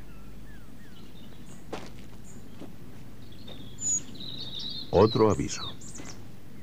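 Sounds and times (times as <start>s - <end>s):
great tit furtive alarm calls: 0.0s - 6.6s
speech: 4.9s - 5.8s.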